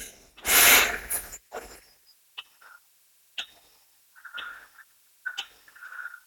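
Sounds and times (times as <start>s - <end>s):
slow deep inhale during breathing exercise: 0.0s - 1.4s.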